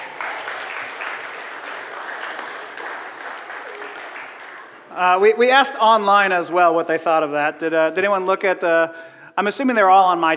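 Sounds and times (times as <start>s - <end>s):
crowd applause: 0.0s - 5.2s
speech: 5.0s - 10.3s.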